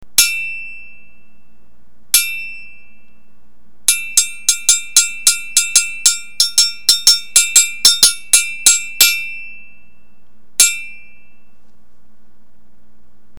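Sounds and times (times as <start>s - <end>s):
anvil: 0.2s - 1.6s, 2.2s - 3.1s, 3.9s - 10.0s, 10.6s - 11.5s.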